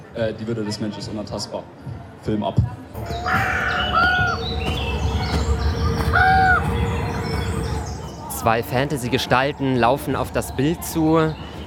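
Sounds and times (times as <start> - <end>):
speech: 0.2 - 4.9, 8.4 - 11.5
arching bird calls: 3.0 - 8.4
birds chirping: 3.0 - 11.6.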